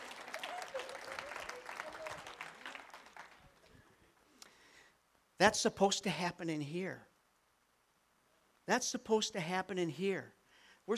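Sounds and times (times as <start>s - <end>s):
audience applauding: 0.0s - 3.9s
speech: 5.4s - 7.1s, 8.7s - 10.9s.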